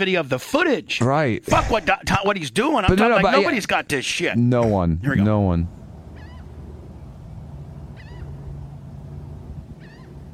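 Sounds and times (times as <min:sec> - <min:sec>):
speech: 0:00.0 - 0:05.8
steady low rumble of noise: 0:04.9 - 0:10.3
seagulls calling: 0:05.8 - 0:10.3.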